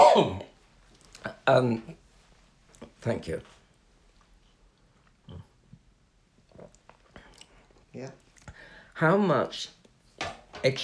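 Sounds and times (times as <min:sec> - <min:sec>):
person coughing: 0:00.0 - 0:00.5
speech: 0:00.2 - 0:00.4, 0:01.5 - 0:02.0, 0:03.0 - 0:03.5, 0:08.0 - 0:08.2, 0:09.0 - 0:10.8.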